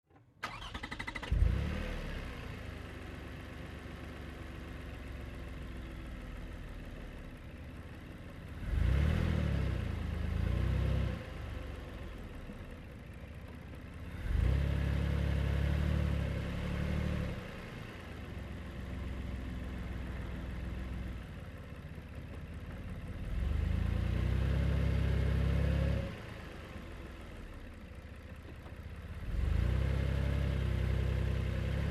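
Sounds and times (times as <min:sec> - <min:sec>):
2005 Toyota Highlander V6 driving slowly, recorded onboard: 0:01.8 - 0:31.9.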